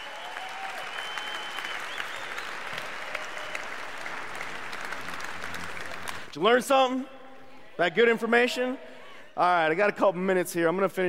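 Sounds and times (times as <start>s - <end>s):
crowd applauding: 0.0s - 6.4s
faint whistles or tones: 0.4s - 2.6s
speech: 6.4s - 7.2s, 7.8s - 11.0s.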